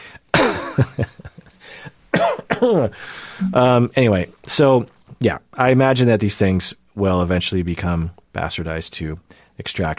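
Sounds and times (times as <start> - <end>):
person coughing from something caught in the throat: 2.2 - 2.8
speech: 2.6 - 9.9.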